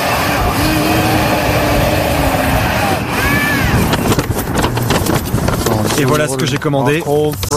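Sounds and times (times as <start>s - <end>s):
delivery drone motor whining overhead: 0.0s - 5.2s
noisy rustling: 0.0s - 7.5s
speech: 6.0s - 7.5s.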